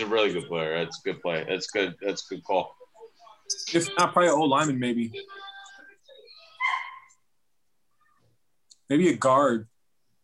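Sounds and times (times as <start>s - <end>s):
speech: 0.0s - 2.8s, 3.5s - 5.5s, 8.9s - 9.7s
dog whimpering: 6.6s - 7.1s
dog barking: 6.6s - 7.2s.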